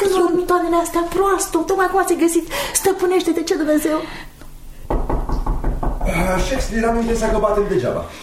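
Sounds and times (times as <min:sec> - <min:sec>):
speech: 0:00.5 - 0:04.3, 0:06.1 - 0:08.2
loud knocking on a door: 0:04.8 - 0:07.8.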